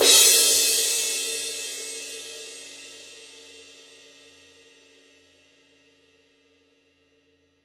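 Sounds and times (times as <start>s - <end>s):
18-inch heavy full crash cymbal of forged bronze alloy hit on edge: 0.0s - 3.6s.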